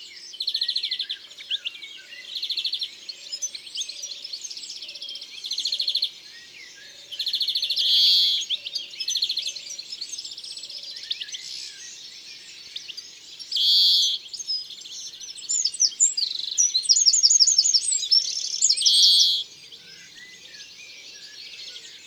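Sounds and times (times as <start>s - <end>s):
European greenfinch singing: 0.2s - 22.0s.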